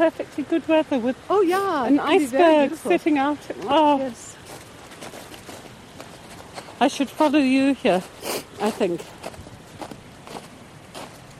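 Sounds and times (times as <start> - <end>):
speech: 0.0 - 4.4, 6.8 - 9.1
footsteps crunching on snow: 4.4 - 11.3.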